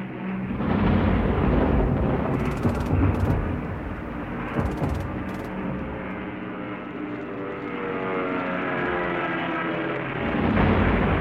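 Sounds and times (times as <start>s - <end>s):
British bomber engines droning at night: 0.0s - 11.1s
heavy rumbling: 0.5s - 7.1s
anti-aircraft guns firing at night near a camp: 0.5s - 11.1s.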